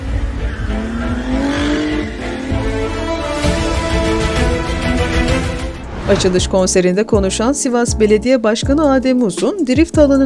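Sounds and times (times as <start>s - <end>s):
Ferrari engine roaring and revving while drifting at a drift arena: 0.0s - 7.8s
speech: 6.1s - 10.2s.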